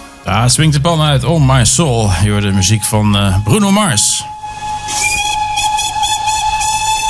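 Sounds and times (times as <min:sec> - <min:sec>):
speech: 0:00.3 - 0:05.2
rumbling rail noise: 0:00.5 - 0:07.0
steam locomotive whistle: 0:02.3 - 0:07.0
rhythmically pulsing steam hiss: 0:04.4 - 0:07.0.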